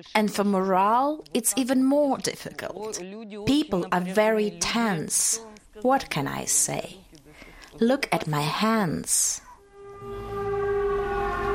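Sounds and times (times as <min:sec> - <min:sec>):
speech: 0:00.0 - 0:07.1, 0:07.8 - 0:09.4
air raid siren wailing: 0:09.6 - 0:11.5.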